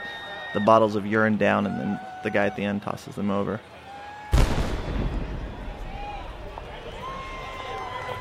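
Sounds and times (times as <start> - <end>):
scattered whistles from a crowd: 0.0 - 0.8
large outdoor crowd roaring and cheering: 0.0 - 8.1
speech: 0.5 - 3.8
cannon blast: 4.3 - 7.0.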